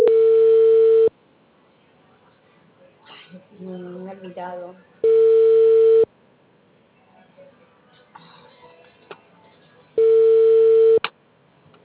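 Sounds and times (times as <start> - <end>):
telephone ringback tone of an unanswered call: 0.0 - 1.1, 5.0 - 6.1, 10.0 - 11.0
speech: 4.4 - 4.9.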